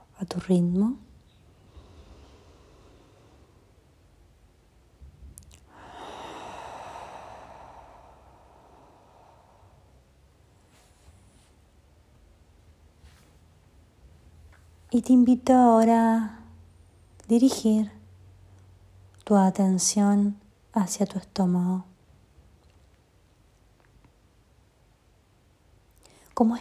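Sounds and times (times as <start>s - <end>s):
faint steady hiss: 0.0s - 26.5s
speech: 0.2s - 1.1s, 15.0s - 16.4s, 17.3s - 18.0s, 19.3s - 21.9s, 26.4s - 26.5s
deep breathing in through nose, out through mouth during a guided relaxation exercise: 1.4s - 4.2s, 5.5s - 11.1s.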